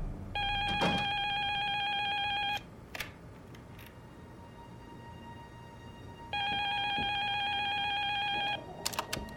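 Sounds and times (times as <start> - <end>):
telephone ringing with a bright electronic trill: 0.4 - 2.7, 6.3 - 8.7.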